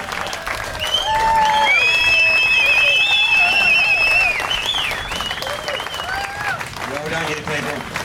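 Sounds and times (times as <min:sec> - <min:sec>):
loud cheers and whoops: 0:00.0 - 0:06.7
large crowd applauding: 0:00.0 - 0:08.0
shrill whistles: 0:00.8 - 0:06.3.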